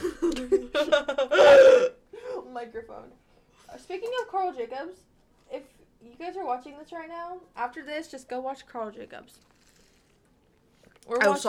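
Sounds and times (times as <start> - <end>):
person burping: 1.2 - 2.0
speech: 2.7 - 9.5, 11.1 - 11.4.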